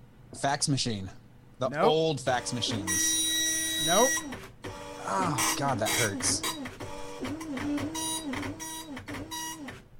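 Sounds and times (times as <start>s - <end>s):
speech: 0.4s - 3.2s, 3.8s - 4.5s, 5.1s - 6.6s, 7.2s - 8.0s
old dot matrix printer printing: 2.3s - 9.9s.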